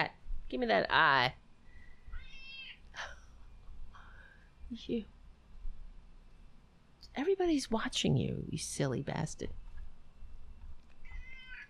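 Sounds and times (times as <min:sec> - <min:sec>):
speech: 0:00.0 - 0:01.4, 0:04.7 - 0:05.2, 0:07.2 - 0:09.6
low rumble: 0:00.0 - 0:11.5
cat meowing: 0:02.1 - 0:02.8, 0:11.0 - 0:11.6.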